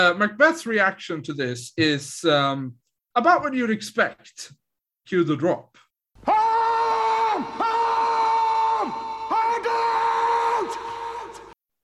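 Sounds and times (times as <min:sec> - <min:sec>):
speech: 0:00.0 - 0:06.4
loud sustained scream sound effect: 0:06.2 - 0:11.6.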